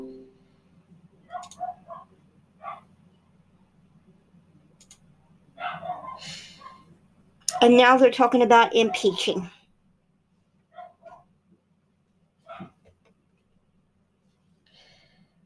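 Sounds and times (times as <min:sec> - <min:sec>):
low hum: 0:00.0 - 0:15.4
dogs barking in yapping bursts: 0:01.3 - 0:02.9, 0:05.6 - 0:06.8, 0:10.7 - 0:11.2, 0:12.4 - 0:12.8
speech: 0:07.6 - 0:09.6.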